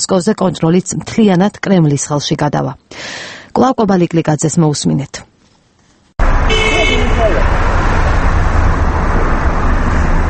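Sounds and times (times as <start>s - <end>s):
speech: 0.0s - 5.3s
dense traffic jam engines and road noise: 6.2s - 10.2s
car horn toot in a traffic jam: 6.4s - 7.5s.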